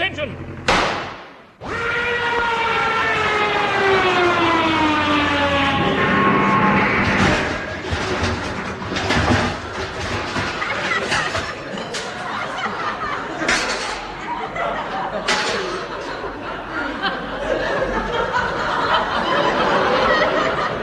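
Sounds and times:
approaching aeroplane engine drone: 0:00.0 - 0:00.8, 0:01.6 - 0:10.1
speech: 0:00.2 - 0:00.5
laughter: 0:10.3 - 0:20.8.

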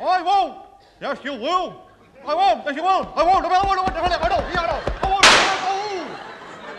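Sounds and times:
speech: 0:00.2 - 0:05.2
laughter: 0:03.4 - 0:06.7
gunshot sound effect: 0:05.2 - 0:05.9.

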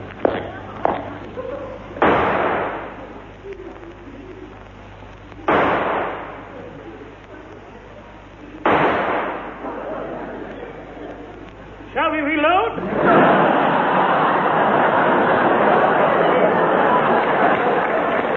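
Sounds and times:
laughter: 0:00.3 - 0:04.6, 0:06.3 - 0:08.6, 0:09.4 - 0:11.9, 0:12.8 - 0:18.3
pistol shots fired in a duel: 0:02.0 - 0:03.0, 0:05.5 - 0:06.4, 0:08.6 - 0:09.6.

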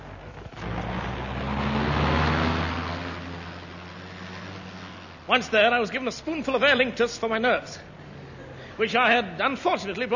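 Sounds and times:
car engine revving as the car pulls away: 0:00.0 - 0:07.1
speech: 0:05.3 - 0:07.9, 0:08.8 - 0:10.1.

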